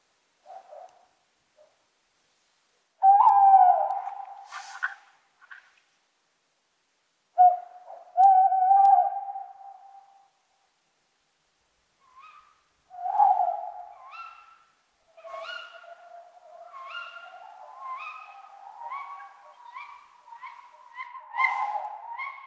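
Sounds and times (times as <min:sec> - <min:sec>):
steady low tone: 0:00.0 - 0:22.4
male tawny owl hooting at night: 0:03.0 - 0:04.9, 0:07.4 - 0:10.1, 0:15.2 - 0:22.4.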